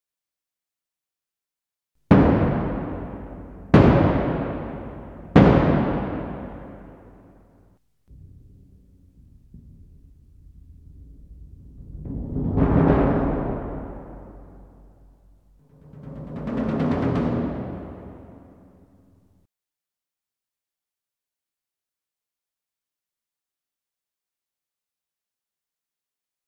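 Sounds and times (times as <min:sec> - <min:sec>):
bass drum: 0:02.1 - 0:07.5, 0:08.1 - 0:18.8.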